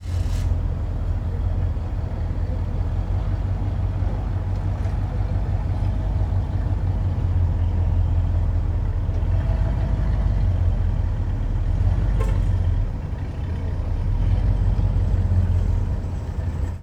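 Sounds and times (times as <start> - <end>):
parking lot ambience: 0.0 - 16.8.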